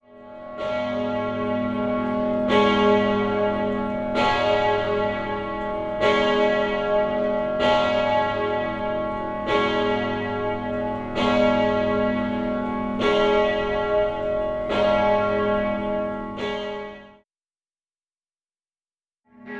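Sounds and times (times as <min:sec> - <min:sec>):
bells of varying quality ringing: 0:00.2 - 0:17.0.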